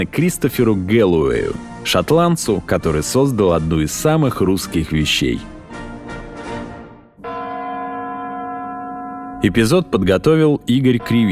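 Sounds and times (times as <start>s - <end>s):
speech: 0.0s - 5.6s, 9.4s - 11.3s
clock tower chimes with rich resonant tone: 7.2s - 11.3s
strong bell strike humming and sustaining: 7.2s - 11.3s.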